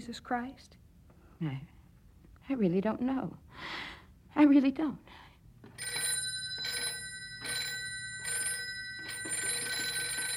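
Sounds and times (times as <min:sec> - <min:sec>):
speech: 0:00.0 - 0:00.8, 0:01.4 - 0:01.8, 0:02.5 - 0:06.0
metallic telephone bell ringing: 0:05.7 - 0:10.3.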